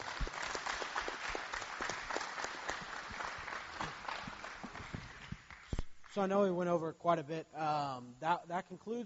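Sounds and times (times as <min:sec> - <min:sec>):
audience applause in a room: 0:00.0 - 0:05.8
speech: 0:06.2 - 0:09.0.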